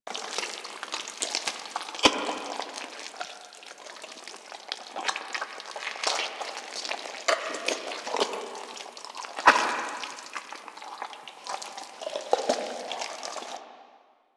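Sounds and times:
chunky medium gore sounds: 0.1s - 13.6s.

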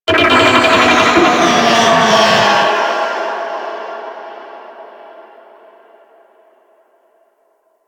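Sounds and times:
Infested Golem creature vocal attack: 0.1s - 3.9s.

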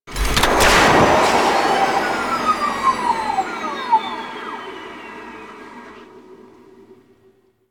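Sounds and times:
skiff engine boost stopping: 0.1s - 7.6s.

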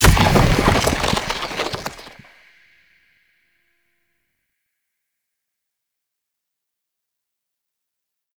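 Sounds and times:
fire rain hit: 0.0s - 2.3s.

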